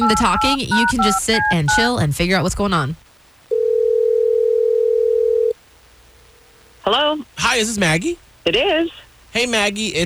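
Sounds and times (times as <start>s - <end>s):
telephone dial tone while placing a call: 0.0s - 1.5s, 3.5s - 5.5s
speech: 0.0s - 3.0s, 6.8s - 10.0s.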